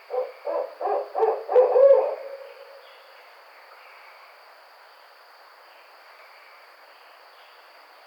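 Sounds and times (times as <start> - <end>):
barred owl hooting: 0.0 - 2.9
faint steady hiss: 0.0 - 8.0.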